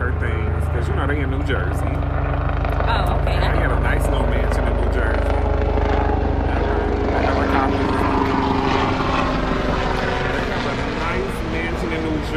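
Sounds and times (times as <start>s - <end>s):
faint voices murmuring: 0.0s - 12.3s
helicopter rotor and engine passing overhead: 0.0s - 12.3s
speech: 1.0s - 2.2s, 2.9s - 5.3s.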